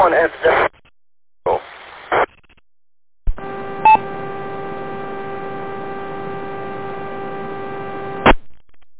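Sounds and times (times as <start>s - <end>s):
crackling ham radio static during a band opening: 0.0s - 2.6s, 3.3s - 8.4s
buzzing electrical hum: 3.3s - 8.4s.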